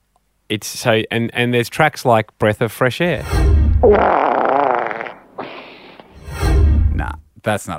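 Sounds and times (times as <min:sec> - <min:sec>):
speech: 0:00.5 - 0:04.4, 0:07.0 - 0:07.7
recorded fart with wavering sputtering tone: 0:03.8 - 0:06.2.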